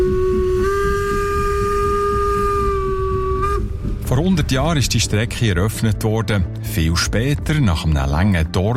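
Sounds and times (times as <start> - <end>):
steam locomotive whistle on a mountain railway line: 0.0 - 3.8
speech: 4.3 - 8.7.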